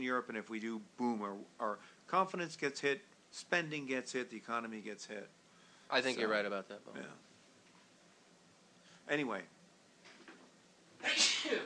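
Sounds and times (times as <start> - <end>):
speech: 0.0 - 7.3, 9.1 - 9.6
sneeze: 11.0 - 11.6.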